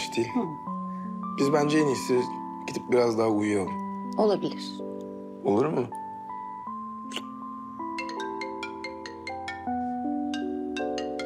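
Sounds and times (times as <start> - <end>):
speech: 0.2 - 0.8, 1.4 - 6.0
phone ringtone playing a melodic chime tune: 6.4 - 11.2.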